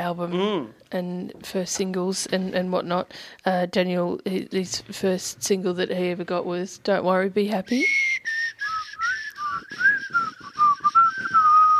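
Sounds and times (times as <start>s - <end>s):
speech: 0.0s - 8.1s
person whistling a bouncy melody: 7.8s - 11.7s.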